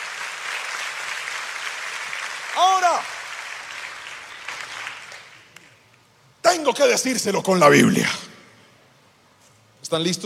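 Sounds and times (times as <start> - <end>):
church congregation applauding: 0.0 - 5.8
speech: 6.6 - 8.3, 9.9 - 10.2.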